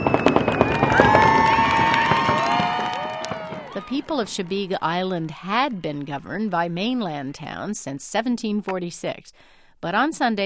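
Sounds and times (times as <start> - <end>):
whistling rockets streaking upward: 0.0 - 4.3
fireworks crackling and popping: 0.0 - 4.6
crowd cheering and shouting: 0.0 - 7.2
speech: 3.9 - 10.4.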